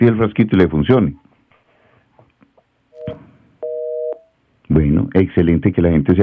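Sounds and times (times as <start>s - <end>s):
speech: 0.0s - 1.2s, 4.7s - 6.2s
steady loud telephone busy tone: 3.0s - 4.3s.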